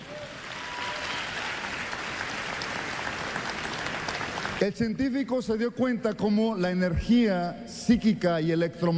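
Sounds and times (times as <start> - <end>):
audience clapping: 0.0 - 4.7
speech: 4.6 - 8.9.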